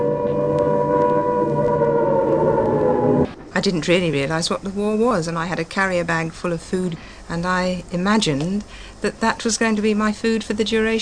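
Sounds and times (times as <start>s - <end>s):
loud air raid siren wailing: 0.0s - 4.8s
speech: 3.6s - 11.0s.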